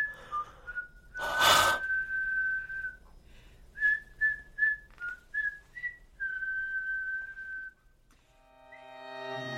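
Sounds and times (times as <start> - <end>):
breathy gust: 0.0 - 2.1
person whistling a simple tune: 0.0 - 7.9.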